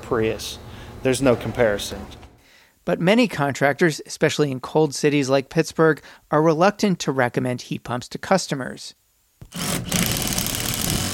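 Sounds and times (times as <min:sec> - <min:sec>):
speech: 0:00.1 - 0:02.2, 0:02.9 - 0:10.2
power tool cutting sheet metal on a gas furnace: 0:09.4 - 0:11.1.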